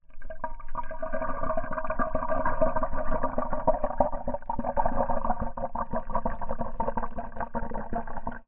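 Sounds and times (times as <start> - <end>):
carbonated drink pouring into a small glass, gurgling, recorded by submerged hydrophone: 0.0 - 8.4.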